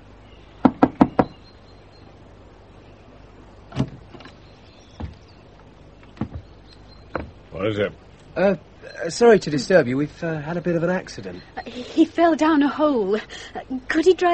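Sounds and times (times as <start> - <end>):
firm knocking on a door: 0.6 - 1.4, 5.0 - 5.2, 6.1 - 6.5, 7.1 - 7.4
speech: 7.6 - 14.3.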